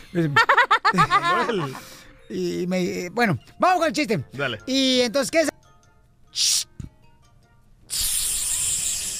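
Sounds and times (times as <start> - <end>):
speech: 0.1 - 5.5
laughter: 0.2 - 1.9
voice imitating a hiss as a riddle: 6.4 - 6.7, 7.9 - 9.1.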